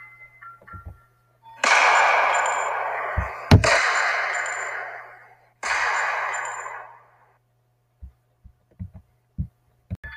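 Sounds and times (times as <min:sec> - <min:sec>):
single sharp loud gunshot: 0:01.6 - 0:07.1.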